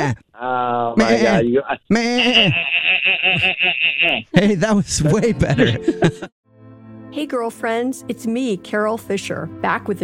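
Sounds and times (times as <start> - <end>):
person imitating goat bleats: 0.0 - 4.3
speech: 0.0 - 6.4, 7.1 - 10.0
laughter: 0.7 - 6.3.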